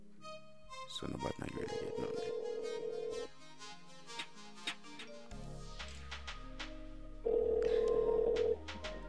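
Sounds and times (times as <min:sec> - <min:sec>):
speech: 0:01.0 - 0:01.6
steady electronic phone ring tone: 0:01.5 - 0:03.3, 0:07.2 - 0:08.6
backing beat with deep bass and sharp percussive hits: 0:04.7 - 0:09.0.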